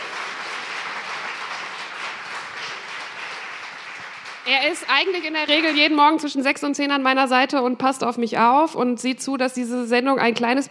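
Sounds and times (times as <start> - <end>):
audience applause: 0.0 - 6.2
speech: 4.5 - 10.6.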